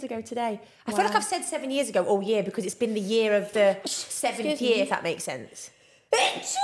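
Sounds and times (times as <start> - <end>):
speech: 0.0 - 6.6
sneeze: 6.2 - 6.6.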